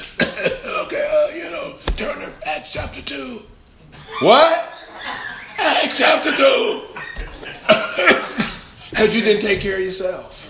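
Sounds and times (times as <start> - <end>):
person coughing: 0.0 - 1.1
speech: 2.7 - 4.7, 5.8 - 6.9, 9.0 - 10.4
laughter: 4.0 - 9.0.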